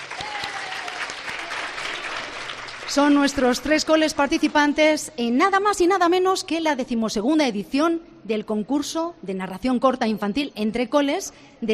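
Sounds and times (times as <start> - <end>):
audience applause at a children's short-story contest in Guadalajara: 0.0 - 3.3
speech: 2.9 - 11.7.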